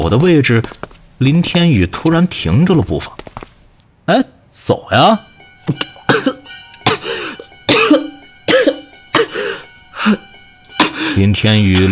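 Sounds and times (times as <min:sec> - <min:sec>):
speech: 0:00.0 - 0:03.4, 0:04.1 - 0:05.9, 0:11.2 - 0:11.9
pale man coughing harshly while leaning against a wall: 0:06.1 - 0:09.6, 0:10.8 - 0:11.2.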